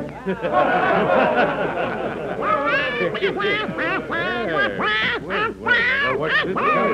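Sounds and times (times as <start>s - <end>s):
laughter: 0.1s - 6.9s
duck quacking in a sing-song melody: 2.4s - 6.9s.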